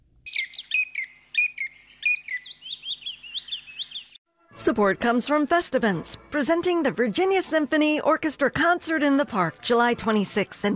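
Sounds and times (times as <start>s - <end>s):
chipping sparrow singing: 0.3s - 4.2s
speech: 4.6s - 10.7s.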